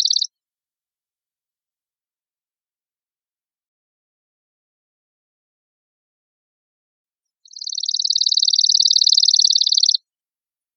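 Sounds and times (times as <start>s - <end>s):
chipping sparrow evenly pulsed trill: 0.0s - 0.3s, 7.4s - 10.0s.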